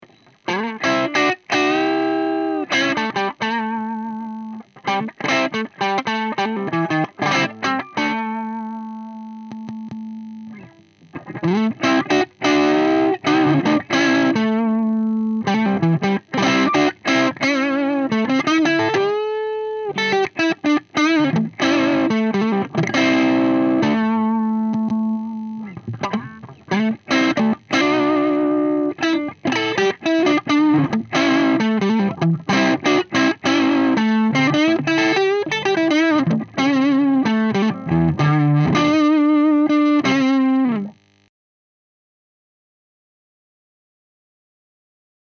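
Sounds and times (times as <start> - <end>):
guitar on neck pickup through overdriven EF86 pentode preamp of a three-channel valve amplifier: 0.0 - 41.3.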